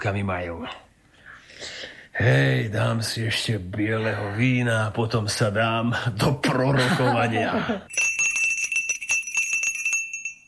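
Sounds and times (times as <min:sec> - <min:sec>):
speech: 0:00.0 - 0:00.9, 0:01.6 - 0:08.1
laughter: 0:06.6 - 0:07.9
small hand bell shaken to summon a servant: 0:07.9 - 0:10.4.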